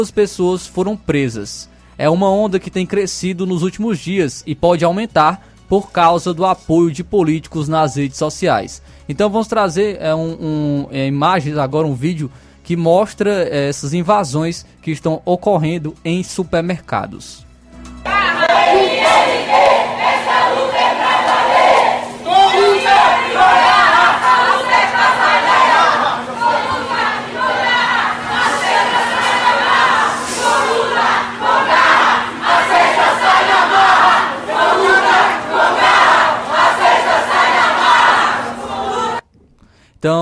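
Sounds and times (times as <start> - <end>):
speech: 0.0 - 17.4
faint steady hum: 17.7 - 40.1
large crowd chanting slogans during supermarket invasion: 18.0 - 39.2.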